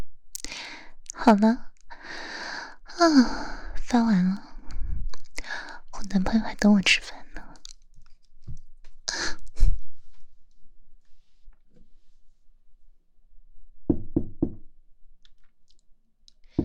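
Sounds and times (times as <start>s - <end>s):
speech: 1.3s - 2.3s, 3.0s - 4.5s, 6.1s - 7.2s
knocking on a door: 13.9s - 14.7s.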